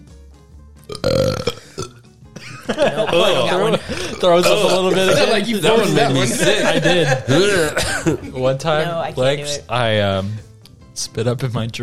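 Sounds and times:
gurgling belch: 0.9 - 2.0
loud drawn-out burp on command: 0.9 - 2.0
laughter: 2.4 - 8.7
speech: 2.7 - 11.8.

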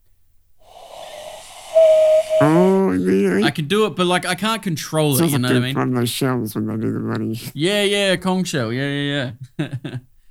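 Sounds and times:
cupped-hand bird call whistle: 1.7 - 2.7
speech: 2.4 - 10.1.

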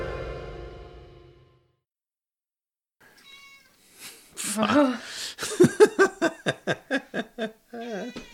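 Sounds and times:
cat meowing: 3.1 - 3.8, 7.8 - 8.3
laughter: 4.5 - 8.1.

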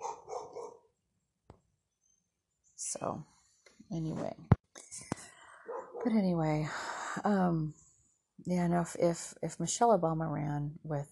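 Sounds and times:
dog barking: 0.0 - 0.9, 5.6 - 6.1
speech: 2.9 - 4.5, 6.0 - 7.8, 8.4 - 11.1.

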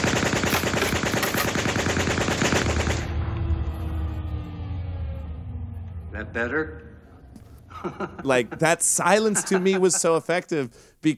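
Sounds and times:
rapid automatic gunfire from a film scene: 0.0 - 3.1
low rumble: 2.6 - 8.6
faint lingering tone: 3.0 - 7.7
speech: 6.2 - 7.0, 7.8 - 11.1
laughter: 7.7 - 10.5.

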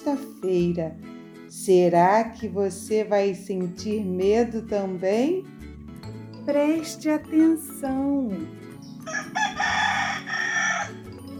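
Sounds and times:
speech: 0.0 - 5.5, 6.4 - 9.8
rooster crowing: 9.0 - 11.1.

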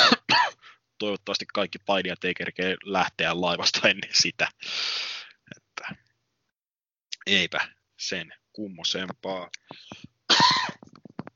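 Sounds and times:
harsh throaty coughing: 0.0 - 0.6, 10.3 - 10.8
speech: 1.0 - 5.2, 7.2 - 10.6.

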